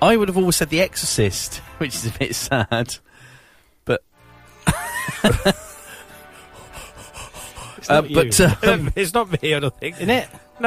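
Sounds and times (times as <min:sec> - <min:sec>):
speech: 0:00.0 - 0:03.1, 0:03.8 - 0:04.1, 0:04.7 - 0:05.7, 0:07.8 - 0:10.6
laughter: 0:02.0 - 0:03.0, 0:04.6 - 0:10.4
heavy breath taken close to microphone: 0:03.0 - 0:03.8, 0:05.8 - 0:07.9.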